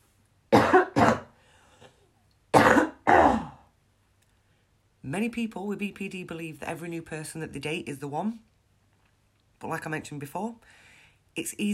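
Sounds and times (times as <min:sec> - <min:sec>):
person coughing: 0:00.5 - 0:03.7
faint breathing: 0:01.3 - 0:02.1, 0:10.6 - 0:11.3
speech: 0:05.1 - 0:08.5, 0:09.6 - 0:10.8, 0:11.4 - 0:11.7.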